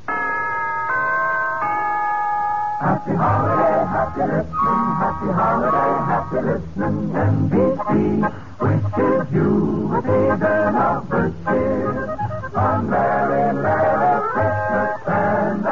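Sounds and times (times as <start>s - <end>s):
broadcast chimes playing a holiday melody: 0.1s - 4.6s
speech: 2.9s - 15.7s.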